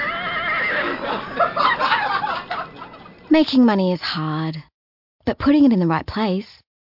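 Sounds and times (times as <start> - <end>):
horse whinny playing as a phone ringtone: 0.0 - 1.4
laughter: 0.0 - 3.3
speech: 1.0 - 1.8, 3.3 - 4.7, 5.3 - 6.6.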